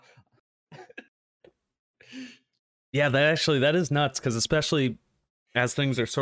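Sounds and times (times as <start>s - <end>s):
rough coughs: 0.7s - 1.1s
speech: 2.9s - 6.2s.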